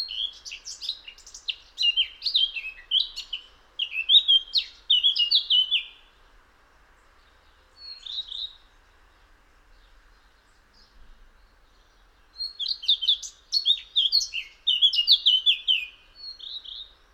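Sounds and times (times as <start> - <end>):
Eurasian blackcap Sylvia atricapilla singing: 0.0 - 6.0, 11.4 - 17.0.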